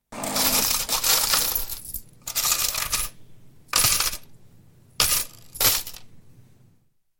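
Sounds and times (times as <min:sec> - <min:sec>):
coins jingling: 0:00.2 - 0:04.3, 0:05.0 - 0:06.1.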